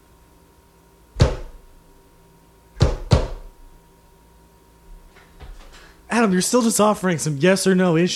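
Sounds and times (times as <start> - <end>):
knocking on a wall: 1.2 - 1.6, 2.8 - 3.5
speech: 6.2 - 8.1.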